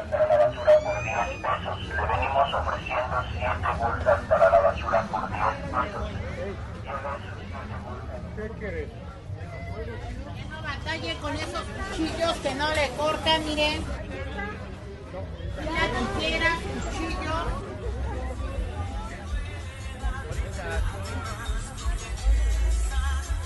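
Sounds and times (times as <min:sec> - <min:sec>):
louder calls at an open-air street market: 0:00.0 - 0:06.2
crowd chatter at an open-air street market in San Felipe de Jesús: 0:00.0 - 0:23.4.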